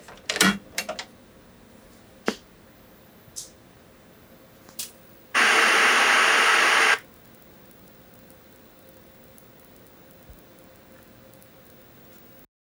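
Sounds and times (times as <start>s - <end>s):
CRT television turning on: 0.0s - 12.5s.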